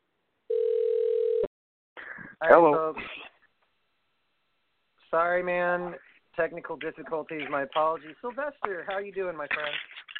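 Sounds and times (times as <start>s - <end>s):
telephone line ringing out after dialing a call: 0.5s - 1.5s
speech: 2.4s - 3.3s, 5.1s - 10.1s.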